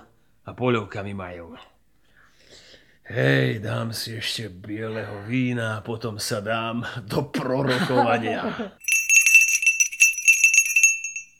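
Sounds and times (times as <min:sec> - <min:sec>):
speech: 0:00.5 - 0:01.8, 0:03.1 - 0:08.9
laughter: 0:07.6 - 0:08.8
small hand bell rung to summon servant: 0:08.8 - 0:11.3.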